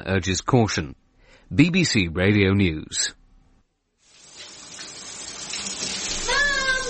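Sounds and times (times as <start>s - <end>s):
speech: 0.0s - 3.2s
shower water running: 4.0s - 6.8s.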